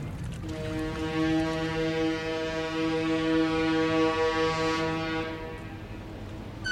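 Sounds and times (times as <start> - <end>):
faint horn on a New York City waterfront: 0.4 - 5.9
deep ship's horn blast on a New York City waterfront at dawn: 0.4 - 6.6.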